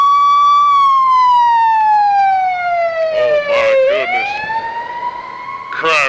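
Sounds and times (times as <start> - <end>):
ambulance siren wailing while passing by: 0.0 - 6.0.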